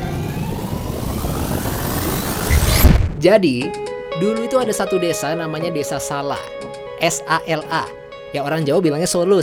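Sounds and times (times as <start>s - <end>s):
low rumbling swell: 0.0s - 3.2s
time-travel transition whooshing sweep effect: 0.0s - 3.2s
speech: 3.2s - 9.4s.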